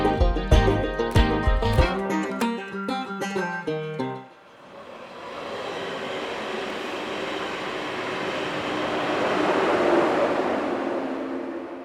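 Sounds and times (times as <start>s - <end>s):
short burst of tonal music: 0.0s - 4.4s
train rumbling past a railway station platform in Fürstenberg an der Havel: 4.5s - 11.8s.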